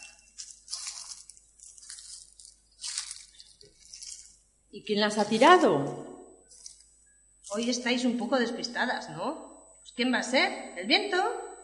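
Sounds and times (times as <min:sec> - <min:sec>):
footsteps crunching through dry autumn leaves in a park: 0:00.0 - 0:04.4
speech: 0:04.7 - 0:06.1, 0:07.6 - 0:11.4.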